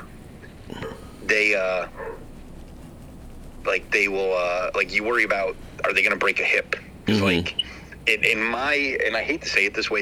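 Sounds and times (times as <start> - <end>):
speech: 1.3 - 2.1, 3.6 - 9.9
dogs barking excitedly at home: 1.9 - 2.3.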